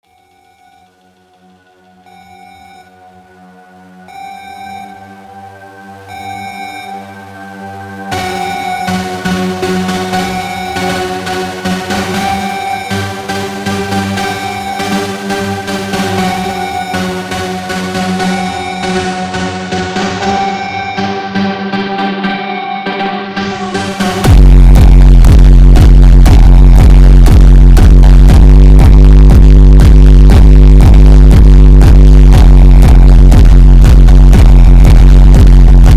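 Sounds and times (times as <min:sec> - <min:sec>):
slow superbass siren with reverb: 0:00.0 - 0:35.8.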